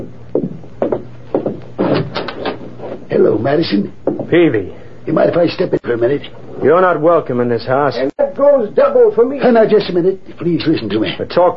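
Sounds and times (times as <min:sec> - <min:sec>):
dull wooden thuds: 0:00.0 - 0:02.6, 0:04.0 - 0:04.3
door being opened to a visitor: 0:01.4 - 0:02.6
speech: 0:03.1 - 0:11.5.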